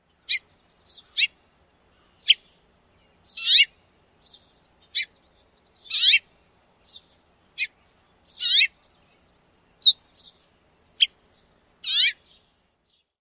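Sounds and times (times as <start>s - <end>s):
House Finch various calls: 0.1s - 6.3s, 6.9s - 11.2s, 11.8s - 12.4s.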